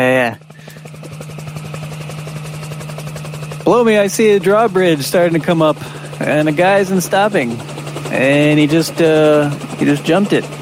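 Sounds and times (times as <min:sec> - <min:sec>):
helicopter flying above a rising drawbridge, rotor blades chopping: 0:00.0 - 0:10.6
speech: 0:03.7 - 0:10.6.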